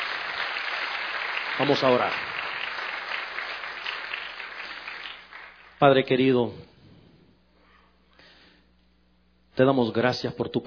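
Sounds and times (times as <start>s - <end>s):
applause at a church service after a sermon: 0.0s - 6.3s
speech: 1.6s - 2.3s, 5.8s - 6.7s, 9.6s - 10.6s.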